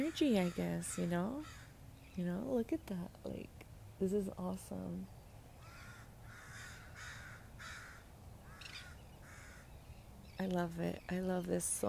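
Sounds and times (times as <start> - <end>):
speech: 0.0 - 1.6, 2.2 - 5.2, 10.4 - 11.8
constant low outdoor rumble: 0.0 - 11.8
crow cawing outdoors: 0.4 - 1.7, 5.6 - 9.7.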